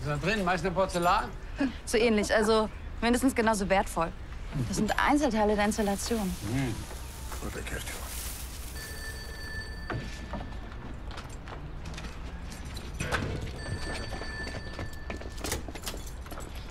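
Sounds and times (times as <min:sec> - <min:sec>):
speech: 0:00.0 - 0:08.1
telephone ringing with high electronic tone: 0:08.8 - 0:10.8, 0:13.6 - 0:15.4.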